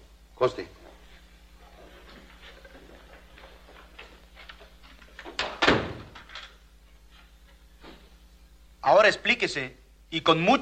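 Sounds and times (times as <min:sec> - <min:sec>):
speech: 0:00.4 - 0:00.8, 0:09.0 - 0:10.6
door swinging shut with a solid thunk: 0:05.2 - 0:06.6.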